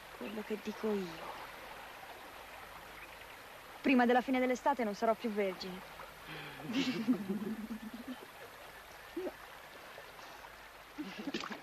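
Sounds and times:
river water flowing: 0.0s - 11.6s
speech: 0.2s - 1.4s, 3.8s - 8.0s.

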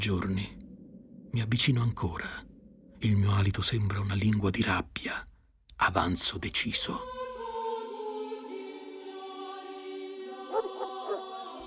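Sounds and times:
speech: 0.0s - 0.6s, 1.3s - 7.2s
dog whining in a valley by Gubbio in Italy: 10.5s - 11.6s.

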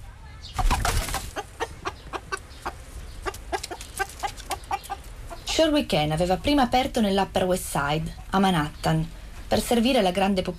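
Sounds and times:
chicken clucking: 0.3s - 6.4s
chicken wings fluttering: 0.5s - 1.6s, 3.2s - 5.2s
speech: 5.6s - 10.5s.

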